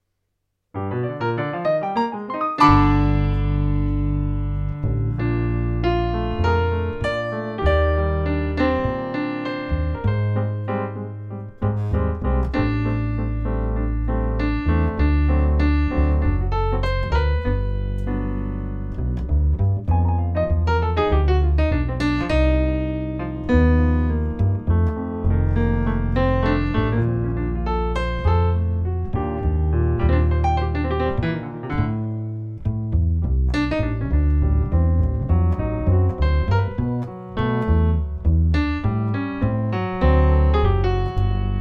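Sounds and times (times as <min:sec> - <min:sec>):
jazz piano bass notes: 0:00.0 - 0:41.5.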